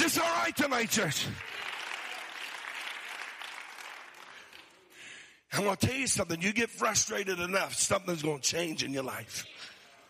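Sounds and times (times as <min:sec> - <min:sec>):
large audience clapping: 0:00.0 - 0:05.2
speech: 0:00.5 - 0:01.6, 0:05.5 - 0:09.7.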